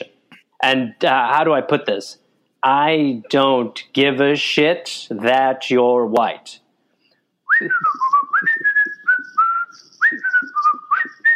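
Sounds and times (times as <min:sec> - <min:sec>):
speech: 0:00.6 - 0:06.6, 0:07.6 - 0:08.5
person whistling a jaunty tune: 0:07.5 - 0:11.3.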